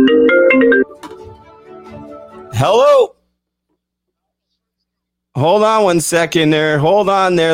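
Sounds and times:
electronic phone ringtone for an incoming call: 0.0 - 0.9
speech: 2.6 - 3.2, 5.4 - 7.5.

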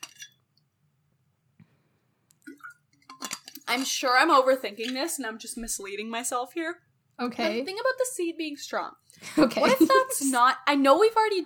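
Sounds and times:
drinking glass clinking: 0.0 - 0.4, 2.5 - 3.6
speech: 3.7 - 11.4
laughter: 9.3 - 10.4.

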